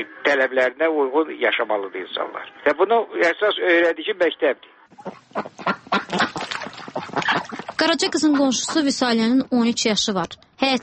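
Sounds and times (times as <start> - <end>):
speech: 0.0 - 6.4, 7.2 - 10.8
geese honking on a dried-up muddy pond: 4.9 - 9.1.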